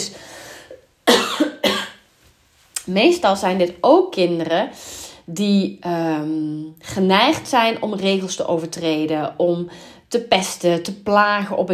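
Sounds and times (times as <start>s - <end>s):
person coughing: 1.0s - 2.0s
speech: 2.9s - 11.7s.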